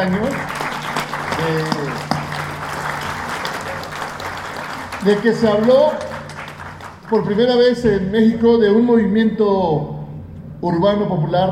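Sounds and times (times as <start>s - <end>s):
speech: 0.0s - 0.6s, 5.0s - 6.1s, 7.1s - 9.9s, 10.6s - 11.5s
audience applause at a gathering of a popular urban movement in Mexico: 0.0s - 7.4s.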